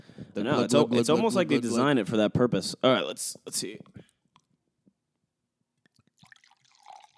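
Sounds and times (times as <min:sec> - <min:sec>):
speech: 0:00.4 - 0:04.0
faint drips and clinks: 0:05.8 - 0:07.1
unchilled wine pouring into a glass: 0:05.9 - 0:07.1.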